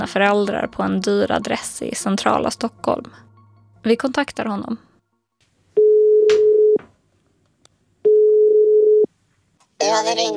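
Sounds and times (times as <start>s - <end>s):
speech: 0.0s - 4.9s, 9.8s - 10.3s
telephone ringing for an incoming call: 5.8s - 6.8s, 8.0s - 9.1s.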